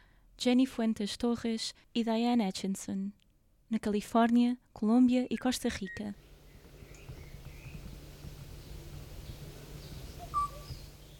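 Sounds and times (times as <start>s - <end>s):
speech: 0.4s - 6.3s
bird call: 6.2s - 11.1s
steady low hum: 6.2s - 11.1s.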